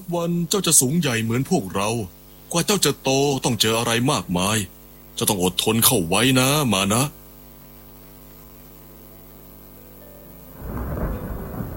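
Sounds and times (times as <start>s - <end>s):
speech: 0.1s - 7.2s
steady heavy rainfall: 10.5s - 11.7s
deep rumble of thunder: 10.6s - 11.7s.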